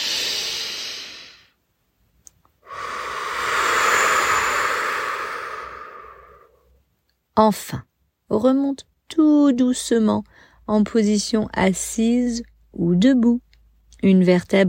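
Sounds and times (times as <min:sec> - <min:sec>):
slow deep breathing during a morning meditation in a reclined position: 0:00.0 - 0:01.6, 0:02.6 - 0:06.7
speech: 0:07.4 - 0:13.4, 0:14.0 - 0:14.6.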